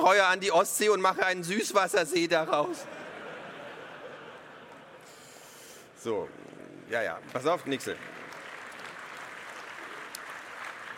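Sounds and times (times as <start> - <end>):
speech: 0.1 - 3.0, 6.0 - 8.1
laughter: 2.2 - 5.4
crowd applauding: 7.2 - 10.9.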